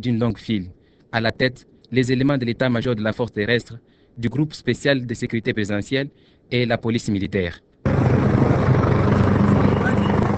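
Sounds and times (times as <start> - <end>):
speech: 0.0 - 8.2
military helicopters flying overhead: 7.8 - 10.3.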